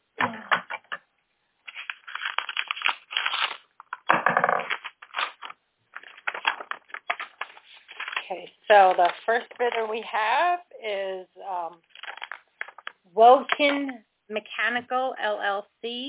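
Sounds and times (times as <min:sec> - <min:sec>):
envelopes being torn open at a public bid opening: 0:01.6 - 0:08.4, 0:11.8 - 0:13.0
envelope paper crackling and rustling: 0:01.6 - 0:10.1, 0:11.9 - 0:13.0
speech: 0:08.3 - 0:11.9, 0:13.2 - 0:16.0.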